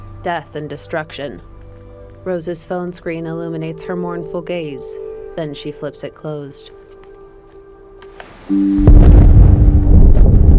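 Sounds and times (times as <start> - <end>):
speech: 0.2 - 1.5, 2.2 - 6.8, 8.5 - 9.0
low hum: 8.5 - 10.5
massive explosions at night: 8.6 - 10.5.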